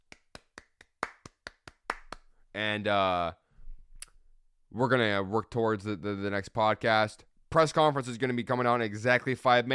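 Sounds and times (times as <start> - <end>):
single pair of hands clapping: 0.0 - 2.3
speech: 2.6 - 3.4, 4.7 - 9.7.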